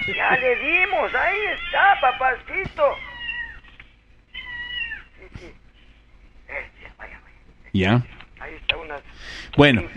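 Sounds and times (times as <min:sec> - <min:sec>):
speech: 0:00.0 - 0:03.1, 0:07.8 - 0:09.9
cat meowing: 0:00.0 - 0:05.2.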